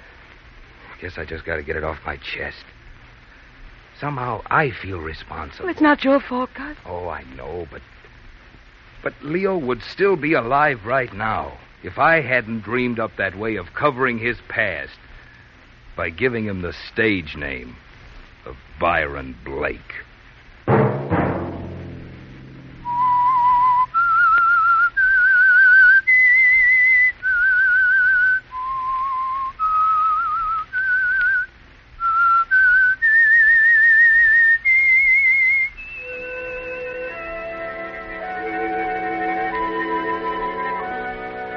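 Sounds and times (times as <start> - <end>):
speech: 1.0 - 2.8, 4.0 - 8.0, 9.0 - 15.1, 16.0 - 17.8, 18.4 - 20.1
person whistling a slow eerie melody: 22.8 - 41.5
soft orchestral music: 35.9 - 41.5.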